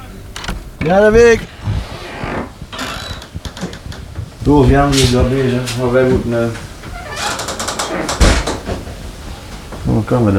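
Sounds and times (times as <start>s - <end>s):
door rattling with clicks and scrapes: 0.0s - 10.3s
speech: 0.8s - 1.6s, 4.4s - 6.7s, 10.0s - 10.3s
door shutting with a dull thump: 8.0s - 8.9s.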